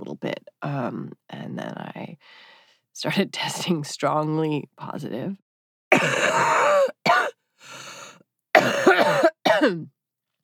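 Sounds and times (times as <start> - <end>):
speech: 0.1 - 7.0, 9.6 - 10.0
person coughing: 5.9 - 7.3, 8.6 - 9.9
wheezy breath: 7.6 - 8.2.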